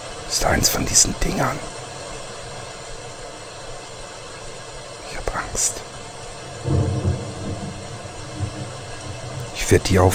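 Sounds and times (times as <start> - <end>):
heavy rain pouring: 0.0 - 10.1
speech: 0.3 - 1.8, 5.5 - 5.9, 9.7 - 10.1
low thunder rumbling: 6.3 - 10.1.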